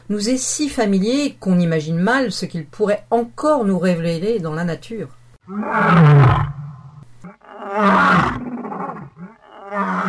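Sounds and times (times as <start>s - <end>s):
speech: 0.1s - 6.5s, 7.7s - 8.4s
lion roaring: 5.5s - 10.0s.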